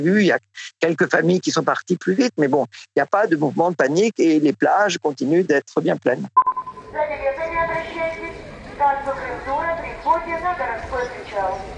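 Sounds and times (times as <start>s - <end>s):
speech: 0.0s - 11.7s
low hum of activity on a beach: 6.6s - 11.7s
amplified loudspeaker announcement on a beach about an excursion departure: 6.8s - 11.7s.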